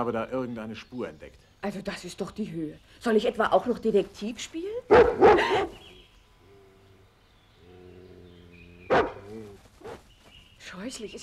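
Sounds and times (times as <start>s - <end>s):
speech: 0.0s - 5.8s, 10.7s - 11.2s
wild dog barking: 4.9s - 5.8s, 8.9s - 10.0s.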